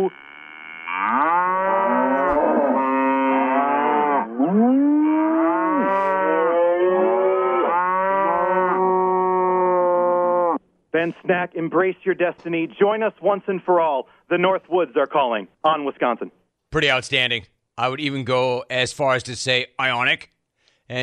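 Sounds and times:
speech: 0:00.0 - 0:00.3, 0:11.3 - 0:20.3
chorus of cows mooing: 0:00.0 - 0:10.6.

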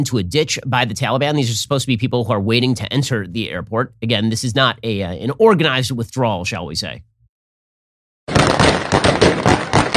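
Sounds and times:
speech: 0:00.0 - 0:07.1
gunshots outside an airport: 0:08.3 - 0:09.9.

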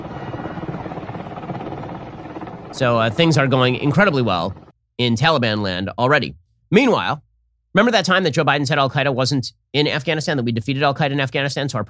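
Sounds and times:
helicopter flying overhead: 0:00.0 - 0:04.8
speech: 0:02.7 - 0:11.8.

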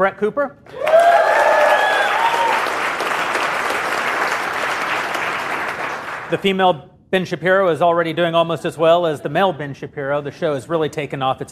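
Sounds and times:
speech: 0:00.0 - 0:00.8, 0:06.3 - 0:11.5
excited whoops: 0:00.7 - 0:02.8
audience applause: 0:00.7 - 0:06.3.

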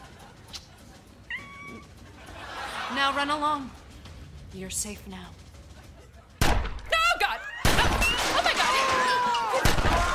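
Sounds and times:
laughter: 0:00.0 - 0:03.7
low steady hum: 0:00.0 - 0:10.1
cat meowing: 0:01.3 - 0:01.8
speech: 0:02.9 - 0:03.8, 0:04.5 - 0:05.4.

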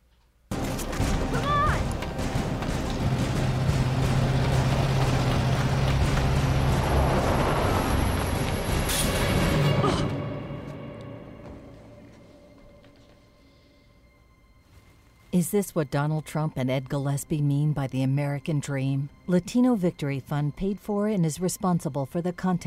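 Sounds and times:
truck engine roaring in a political attack ad: 0:00.5 - 0:10.3
speech: 0:15.4 - 0:22.6.

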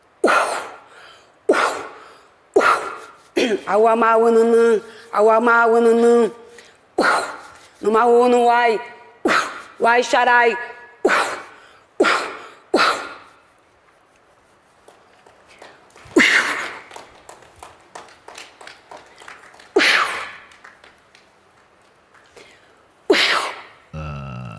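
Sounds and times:
woman sneezing: 0:00.2 - 0:00.9, 0:01.5 - 0:02.0, 0:02.6 - 0:03.7, 0:07.0 - 0:07.5, 0:11.1 - 0:13.3, 0:16.2 - 0:16.8, 0:23.1 - 0:23.8
speech: 0:03.5 - 0:06.4, 0:07.8 - 0:08.9, 0:09.8 - 0:10.7
quieter breathy sounds: 0:23.9 - 0:24.5.

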